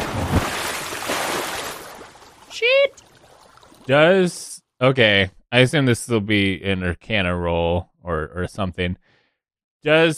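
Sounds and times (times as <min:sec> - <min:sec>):
splash into water: 0:00.0 - 0:03.9
speech: 0:03.9 - 0:09.1, 0:09.8 - 0:10.1.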